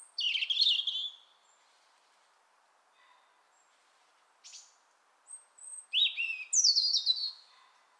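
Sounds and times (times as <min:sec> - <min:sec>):
European robin Erithacus rubecula song of sliding whistles and tumbling trills: 0:00.0 - 0:01.6, 0:04.4 - 0:07.5.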